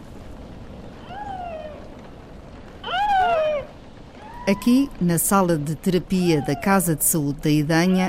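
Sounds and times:
faint hiss: 0:00.0 - 0:08.0
recorded baby seal calling from a white plush toy: 0:01.0 - 0:01.8, 0:02.8 - 0:04.6, 0:06.1 - 0:07.0
speech: 0:04.5 - 0:08.0.

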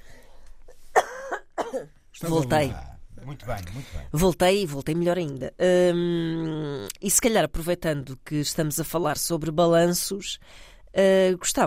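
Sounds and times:
person coughing harshly: 0:01.0 - 0:01.9
speech: 0:01.7 - 0:11.6.

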